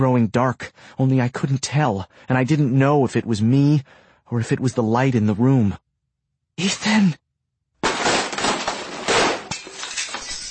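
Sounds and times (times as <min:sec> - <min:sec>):
speech: 0:00.0 - 0:05.8, 0:06.6 - 0:07.2
loud crash: 0:07.8 - 0:10.5
window glass shattering: 0:07.8 - 0:10.5
scattered glass fragments tinkling: 0:08.0 - 0:10.5.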